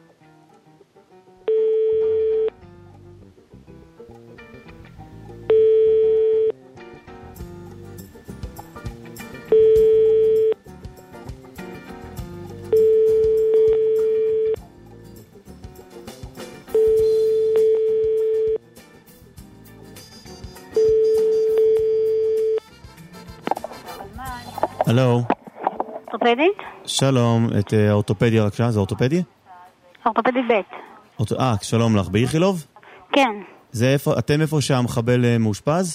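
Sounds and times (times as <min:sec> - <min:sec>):
telephone ringing: 0:01.5 - 0:02.5, 0:05.5 - 0:06.6, 0:09.5 - 0:10.6, 0:12.7 - 0:14.6, 0:16.7 - 0:18.6, 0:20.7 - 0:22.6
speech: 0:25.0 - 0:25.3, 0:26.2 - 0:29.4, 0:30.1 - 0:35.9.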